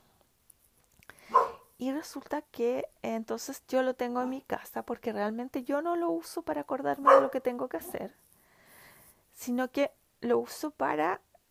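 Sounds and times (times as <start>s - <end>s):
dog barking: 1.3s - 1.7s, 7.0s - 7.4s
speech: 1.8s - 8.2s, 9.4s - 11.3s.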